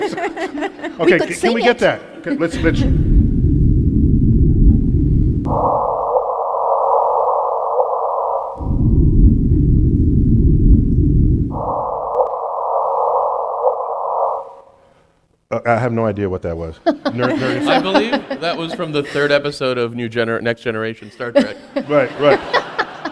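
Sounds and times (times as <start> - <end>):
laughter: 0.0 - 2.9, 16.8 - 19.6, 21.0 - 23.1
steady higher electronic drone of a black hole sonification: 0.0 - 14.6
speech: 0.1 - 3.1, 15.6 - 22.6
deep loud rumble of a black hole sonification: 2.6 - 14.4.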